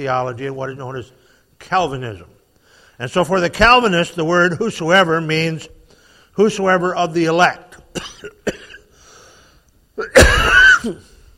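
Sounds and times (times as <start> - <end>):
speech: 0.0 - 2.4, 3.0 - 5.8, 6.4 - 8.6, 10.8 - 11.1
man coughing with a raspy wheezy cough: 7.9 - 9.0, 10.0 - 11.3.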